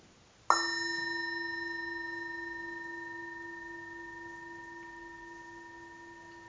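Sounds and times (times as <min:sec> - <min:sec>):
single bell struck, bright pure wavering tone: 0:00.5 - 0:06.4.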